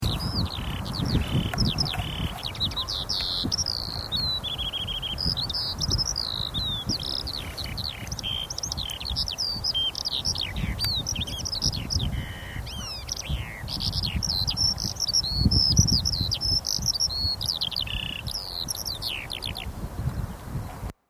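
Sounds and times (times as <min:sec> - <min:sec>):
skylark: 0:00.0 - 0:20.9.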